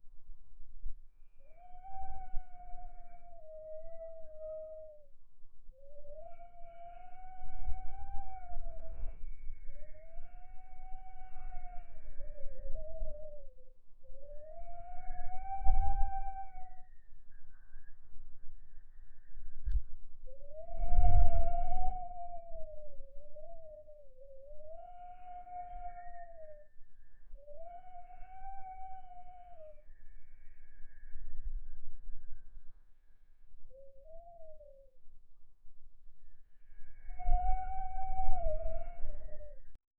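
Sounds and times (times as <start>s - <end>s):
whispering wind: 0.0s - 39.8s
owl call: 1.4s - 5.1s, 5.8s - 13.6s, 14.2s - 17.6s, 20.6s - 30.2s.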